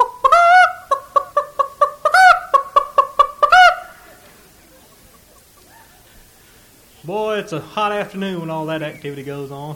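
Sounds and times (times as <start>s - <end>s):
voice imitating a hen cackling after laying an egg: 0.0s - 6.2s
speech: 7.1s - 9.7s.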